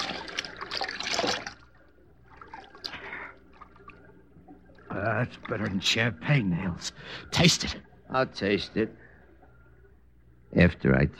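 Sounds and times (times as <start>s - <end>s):
stream water trickling and burbling: 0.0s - 10.4s
speech: 5.1s - 9.0s, 10.5s - 11.1s.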